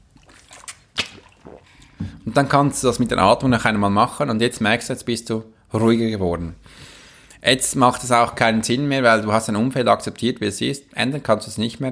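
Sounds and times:
person swallowing water: 0.0 - 2.3
water sloshing in a pink bottle: 0.0 - 4.2
speech: 2.3 - 11.8.

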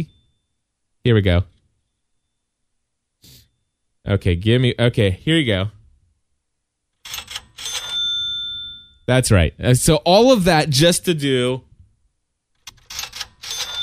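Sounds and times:
speech: 1.0 - 1.5, 4.0 - 5.8, 9.1 - 11.7
cash register cha-ching notification: 7.0 - 8.9, 12.6 - 13.8.

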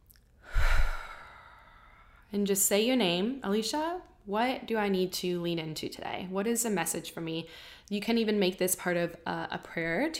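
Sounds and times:
deep breath during a guided mindfulness exercise: 0.4 - 2.3
speech: 2.3 - 10.1.

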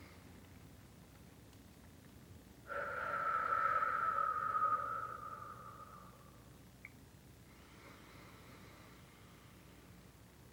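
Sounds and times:
long steady breath pushed out through the mouth with faint whistling tone: 2.7 - 6.4.

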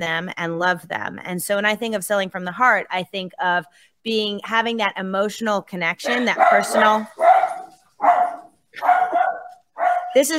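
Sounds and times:
speech: 0.0 - 7.2, 10.1 - 10.3
dogs barking: 6.1 - 10.2.

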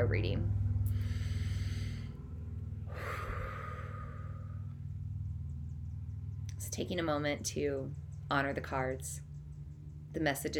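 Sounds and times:
speech: 0.0 - 0.6, 6.8 - 9.3, 10.1 - 10.5
low steady hum: 0.0 - 10.5
slow deep breath drawn in: 0.9 - 2.2, 2.9 - 4.7.

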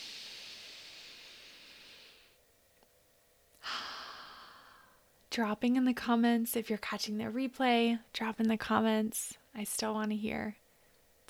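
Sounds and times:
person taking a breath: 0.0 - 2.4, 3.6 - 5.0
speech: 5.3 - 10.6.

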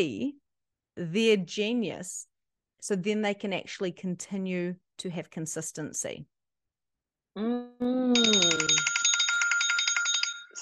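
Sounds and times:
speech: 0.0 - 0.4, 1.0 - 6.3, 7.4 - 8.9
bright trilling phone reminder alert chime: 8.2 - 10.6.

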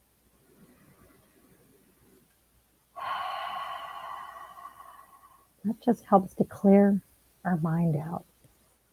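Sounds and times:
person taking a deep breath during a guided relaxation exercise: 3.0 - 5.5
speech: 5.6 - 8.3.

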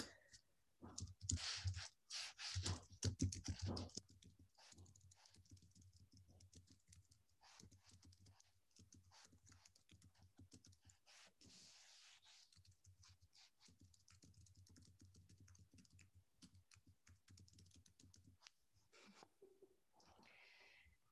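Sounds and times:
typing a message on a computer keyboard: 0.2 - 1.8, 2.7 - 11.1, 12.5 - 18.5.

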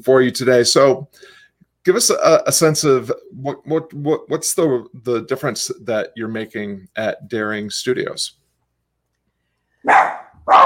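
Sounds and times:
speech: 0.0 - 8.4
dog barking at people coming by: 9.8 - 10.6.

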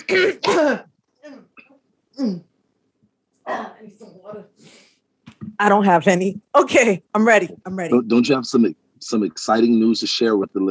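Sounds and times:
speech: 0.0 - 0.9, 2.2 - 2.5, 3.5 - 4.8, 5.4 - 10.6
throat clearing: 0.0 - 2.4
murmured vocal sounds: 7.9 - 10.6
short voice: 8.0 - 10.6.

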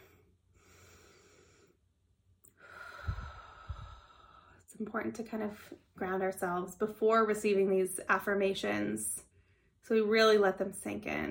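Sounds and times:
slow deep breath in and long exhale: 0.0 - 1.8, 2.5 - 4.7
speech: 4.8 - 9.3, 9.9 - 11.2.

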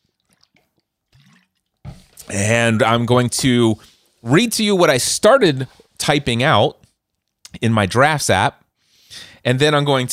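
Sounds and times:
person sipping water: 0.0 - 2.4
speech: 2.3 - 6.8, 7.6 - 10.1.

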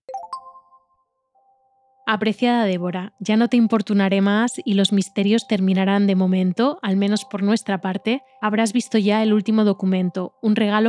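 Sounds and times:
phone incoming-message notification chime: 0.0 - 0.9
speech: 2.1 - 10.8.

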